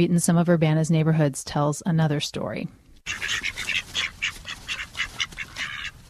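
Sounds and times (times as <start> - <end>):
speech: 0.0 - 3.6
bantam ducks quacking: 3.0 - 6.0.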